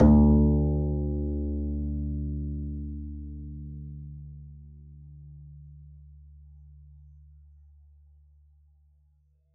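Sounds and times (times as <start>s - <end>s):
double bass pizzicato note D2: 0.0s - 5.8s.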